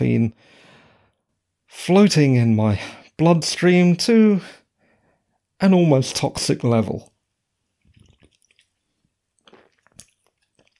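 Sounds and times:
speech: 0:00.0 - 0:00.6, 0:01.7 - 0:04.6, 0:05.6 - 0:07.1
sipping a caffeinated drink with slurping and swallowing: 0:07.8 - 0:08.8, 0:09.4 - 0:10.7.

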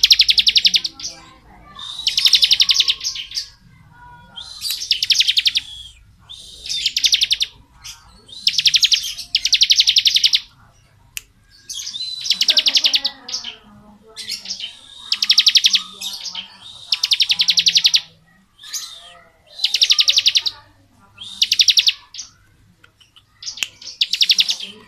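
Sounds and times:
bar-winged prinia rattling song: 0:00.0 - 0:24.8
soft bar-winged prinia chattering: 0:00.0 - 0:24.8.

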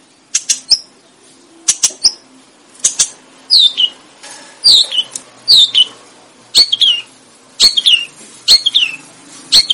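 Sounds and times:
Sooty-headed bulbul singing high bright chirps: 0:01.7 - 0:04.0, 0:04.6 - 0:05.9, 0:06.6 - 0:09.7.

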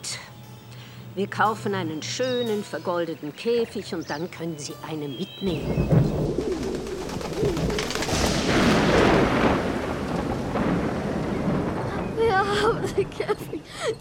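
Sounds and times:
speech: 0:01.2 - 0:06.6, 0:12.8 - 0:14.0
pigeon-like bird calls: 0:05.2 - 0:08.7
thunder from a thunderstorm rumbling: 0:05.4 - 0:14.0.

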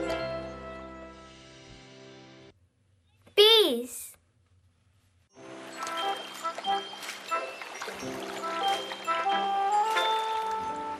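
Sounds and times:
speech: 0:03.7 - 0:04.1
water poured for washing hands and face: 0:05.4 - 0:10.9.

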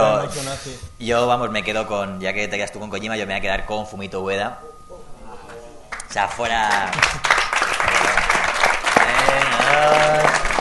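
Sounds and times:
speech: 0:00.0 - 0:04.8, 0:06.1 - 0:07.2, 0:09.3 - 0:10.4
audience applause: 0:05.9 - 0:10.6.

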